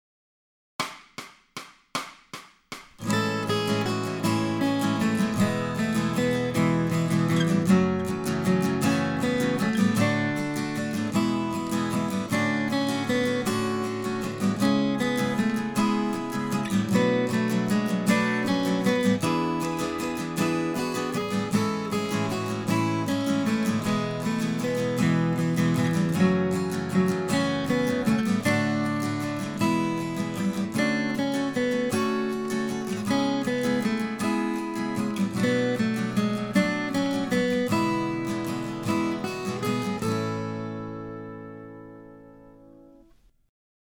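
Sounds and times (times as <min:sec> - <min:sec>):
acoustic guitar accompaniment: 0:03.0 - 0:43.3.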